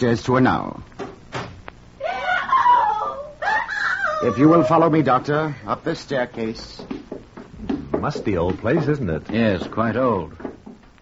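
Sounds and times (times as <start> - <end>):
speech: 0.0 - 1.0, 4.2 - 6.9, 7.6 - 10.4
woman screaming in a high-pitched wavering cry: 2.0 - 4.9.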